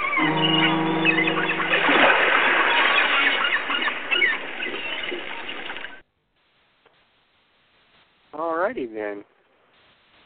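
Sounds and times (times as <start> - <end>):
deep boat horn over the sea: 0.2 - 2.7
sea water rushing, splashing and churning: 0.2 - 5.8
speech: 8.9 - 9.4.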